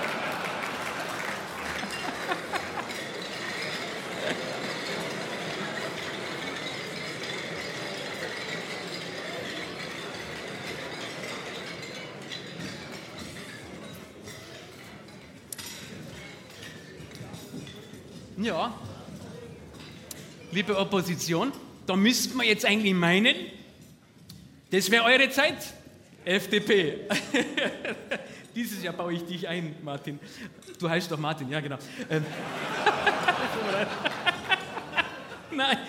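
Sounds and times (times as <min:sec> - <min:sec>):
laughter: 0:00.0 - 0:12.2, 0:27.0 - 0:28.8, 0:31.9 - 0:35.8
murmur of voices from a dense crowd: 0:00.0 - 0:22.8, 0:32.0 - 0:35.8
glasses clinking in a toast: 0:00.6 - 0:21.8, 0:32.3 - 0:35.8
speech: 0:18.4 - 0:18.8, 0:20.5 - 0:23.6, 0:24.7 - 0:28.0, 0:28.6 - 0:34.2, 0:35.6 - 0:35.8.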